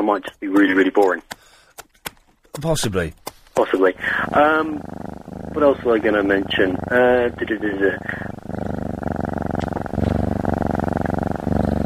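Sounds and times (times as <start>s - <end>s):
speech: 0.0s - 1.4s, 2.6s - 8.4s
cat purring: 3.6s - 11.8s.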